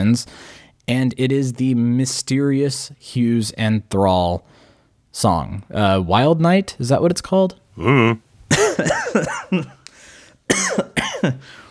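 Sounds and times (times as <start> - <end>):
speech: 0.0 - 4.6, 5.2 - 9.8, 10.5 - 11.6
harsh rasping coughing: 7.8 - 9.8, 10.5 - 11.7.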